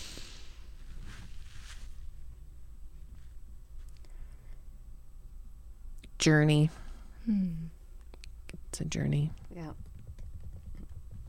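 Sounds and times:
speech: 0:06.2 - 0:07.7, 0:08.7 - 0:09.8
typing on a computer keyboard: 0:09.4 - 0:11.2.

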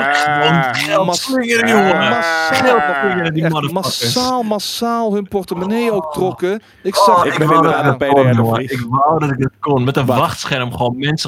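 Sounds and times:
person imitating a sheep with a wavering bleat: 0:00.0 - 0:03.3
speech: 0:00.3 - 0:11.2.

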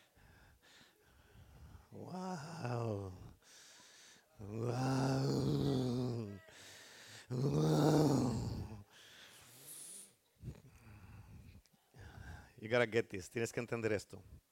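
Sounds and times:
speech: 0:02.0 - 0:03.2, 0:12.7 - 0:14.4
church audience imitating lion roars: 0:02.0 - 0:03.4, 0:04.4 - 0:06.6, 0:07.3 - 0:08.8.

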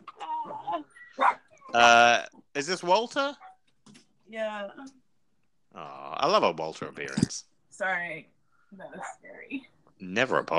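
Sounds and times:
speech: 0:00.8 - 0:03.4, 0:04.3 - 0:05.0, 0:05.8 - 0:10.5
dog giving short whiny yips: 0:01.0 - 0:01.8
dog barking sharply: 0:01.2 - 0:01.5, 0:09.0 - 0:09.2.

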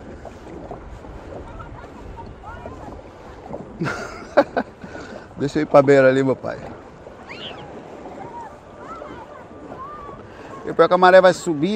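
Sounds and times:
boat moving across water: 0:00.0 - 0:11.7
faint voices murmuring: 0:01.1 - 0:05.4, 0:06.4 - 0:11.7
speech: 0:03.8 - 0:04.7, 0:05.4 - 0:06.8, 0:10.7 - 0:11.7
laughter: 0:03.8 - 0:05.1.

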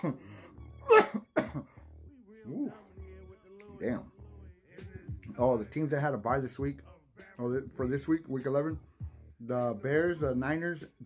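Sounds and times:
speech: 0:00.0 - 0:01.2, 0:05.4 - 0:11.0
harsh coughing after smoking cannabis: 0:00.8 - 0:01.8.

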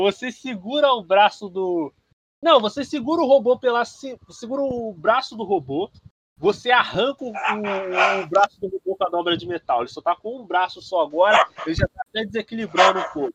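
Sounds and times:
speech: 0:00.0 - 0:13.3
dog barking and yipping: 0:07.3 - 0:08.3, 0:11.3 - 0:11.8, 0:12.7 - 0:13.3.

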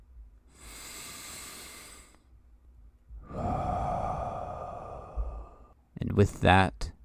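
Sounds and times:
deep breath taken during a guided meditation: 0:00.5 - 0:02.3, 0:03.1 - 0:05.8
speech: 0:06.2 - 0:06.9.

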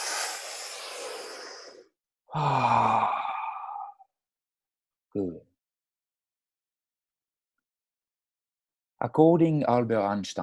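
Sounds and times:
deep breath through the mouth during a group breathing exercise: 0:00.0 - 0:03.9
strong voiced sighing exhale: 0:00.0 - 0:04.0
speech: 0:02.3 - 0:03.1, 0:09.0 - 0:10.4.

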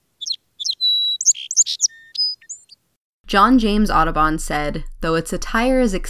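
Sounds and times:
song sparrow singing: 0:00.0 - 0:02.8
speech: 0:03.3 - 0:06.0.

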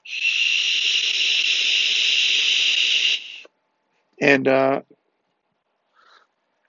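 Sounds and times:
person inhaling and exhaling vapor: 0:00.0 - 0:03.5
vape hiss from a long hit: 0:00.0 - 0:03.5
speech: 0:04.2 - 0:05.0.

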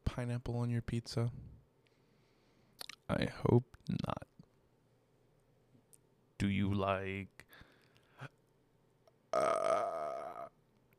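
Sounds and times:
speech: 0:00.2 - 0:01.5, 0:03.1 - 0:04.2, 0:06.4 - 0:07.7, 0:09.4 - 0:09.9
loud throaty burp: 0:09.3 - 0:10.6.

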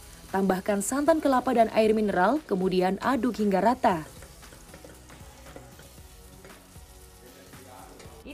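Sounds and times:
onions and minced beef sizzling in butter: 0:00.0 - 0:08.3
speech: 0:00.3 - 0:04.2
faint stirring scrapes: 0:04.1 - 0:08.2.

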